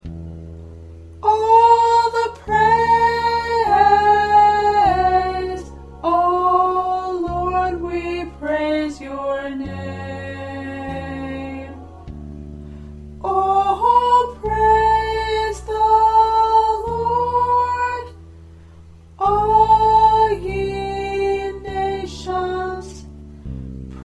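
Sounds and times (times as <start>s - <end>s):
alto voice singing a worship medley practice track: 1.1s - 24.0s.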